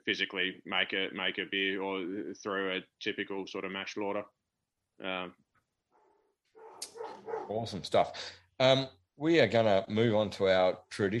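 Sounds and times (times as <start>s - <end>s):
speech: 0.1s - 4.4s, 5.0s - 5.4s, 6.8s - 11.1s
dog barking: 6.6s - 7.7s.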